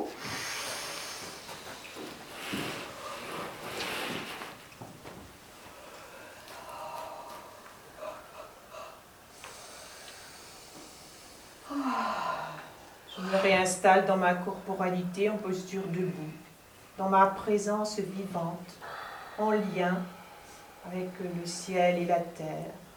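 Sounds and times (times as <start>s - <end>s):
faint breaths: 0.1s - 4.5s, 5.6s - 13.8s, 18.7s - 21.4s
deep inhalation as a person rises to stand: 0.2s - 1.7s, 5.8s - 13.5s, 18.8s - 20.8s
speech: 13.8s - 16.4s, 17.0s - 20.2s, 20.8s - 22.8s.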